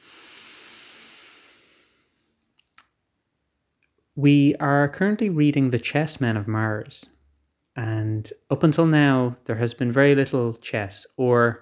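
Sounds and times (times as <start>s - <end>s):
big inhale of breath: 0.0s - 2.4s
speech: 4.2s - 7.2s, 7.8s - 11.6s.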